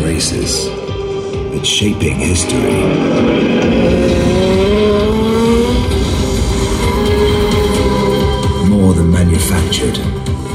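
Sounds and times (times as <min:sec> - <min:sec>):
speech: 0:00.2 - 0:00.9, 0:01.6 - 0:05.0, 0:09.0 - 0:10.5
Norton motorcycle engine roaring while racing: 0:01.3 - 0:08.6.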